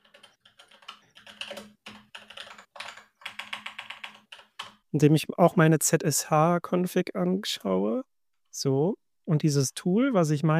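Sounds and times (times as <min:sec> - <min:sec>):
typing on a mechanical keyboard: 0:00.0 - 0:04.8
speech: 0:01.5 - 0:01.8, 0:04.9 - 0:10.5.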